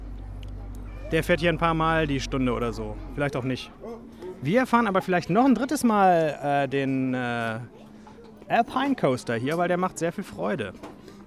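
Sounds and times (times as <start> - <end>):
tractor diesel engine droning: 0.0 - 3.8
speech: 1.1 - 7.8, 8.5 - 10.9.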